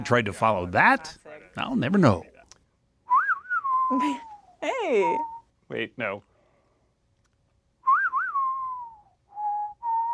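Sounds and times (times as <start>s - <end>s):
speech: 0.0s - 2.3s, 3.9s - 4.2s, 4.9s - 6.3s
person whistling a film theme melody: 3.1s - 4.4s, 7.8s - 10.1s.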